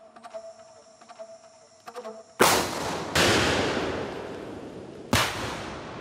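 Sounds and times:
faint humming tones: 0:00.0 - 0:05.2
dynamite explosions destroying a truck engine in the rainforest: 0:02.4 - 0:05.9.

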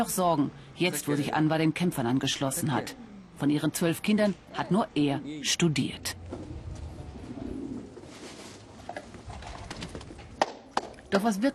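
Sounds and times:
speech: 0:00.0 - 0:06.4, 0:11.1 - 0:11.5
steady ambient hum: 0:00.0 - 0:11.5
pigeons cooing on a rooftop in Syria: 0:06.2 - 0:10.2.

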